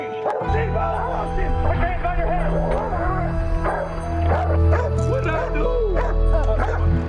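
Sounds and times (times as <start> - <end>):
police dog barking and yipping excitedly: 0.2 - 1.2, 3.6 - 7.0
steady low rumble: 0.6 - 5.1.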